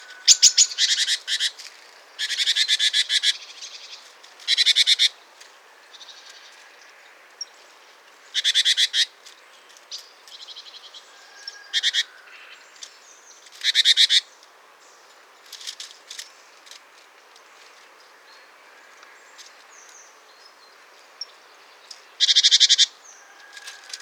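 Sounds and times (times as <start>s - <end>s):
great tit Parus major rasping churr calls: 0.0s - 1.6s, 2.2s - 5.2s, 8.3s - 9.2s, 11.4s - 12.6s, 21.9s - 23.0s.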